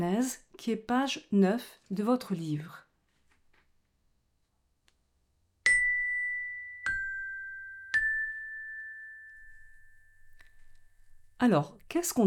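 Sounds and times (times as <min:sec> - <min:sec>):
speech: 0:00.0 - 0:02.8, 0:11.4 - 0:12.2
small bell struck: 0:05.7 - 0:11.4.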